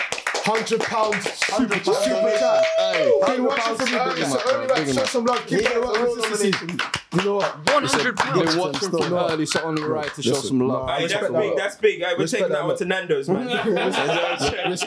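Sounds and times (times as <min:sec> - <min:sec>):
hands clapping in a round of applause: 0:00.0 - 0:10.5
speech: 0:00.4 - 0:14.8
laughter: 0:07.7 - 0:09.6, 0:13.3 - 0:14.8.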